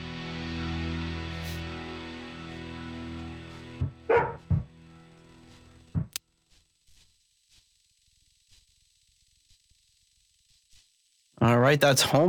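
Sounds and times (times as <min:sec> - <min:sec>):
dog barking: 0:04.0 - 0:04.6
speech: 0:11.4 - 0:12.2.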